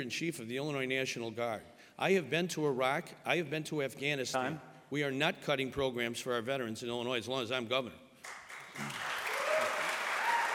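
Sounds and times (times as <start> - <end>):
speech: 0.0 - 8.0
audience applause at a gubernatorial debate: 8.2 - 10.5.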